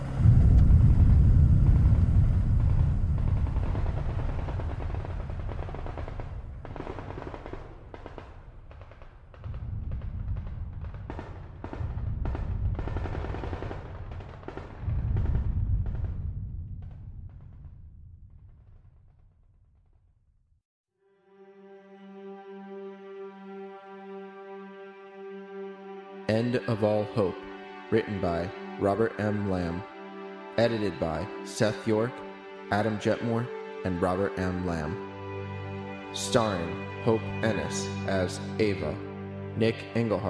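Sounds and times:
distant booms echoing in forest: 0:00.0 - 0:19.6
distant gunfire echoing in forest: 0:03.4 - 0:15.4
speech: 0:26.3 - 0:29.9, 0:30.6 - 0:35.1, 0:36.1 - 0:39.0, 0:39.6 - 0:40.2.

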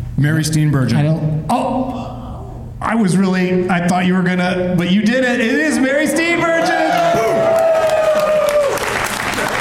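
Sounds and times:
speech: 0:00.2 - 0:02.1, 0:02.8 - 0:07.5
audience applause: 0:06.7 - 0:09.6.

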